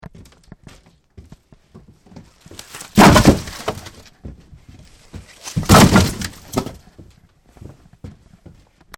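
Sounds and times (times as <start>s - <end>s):
firewood being brought in: 2.2s - 7.1s.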